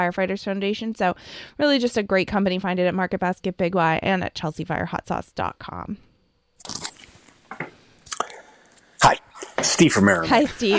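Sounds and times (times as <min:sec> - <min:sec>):
speech: 0:00.0 - 0:06.8, 0:09.0 - 0:10.7
caller chewing crunchy food on a phone line: 0:06.6 - 0:09.6.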